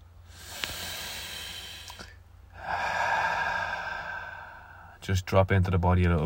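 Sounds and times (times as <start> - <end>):
deep breath taken during a guided relaxation exercise: 0.2 - 5.0
speech: 5.0 - 6.2.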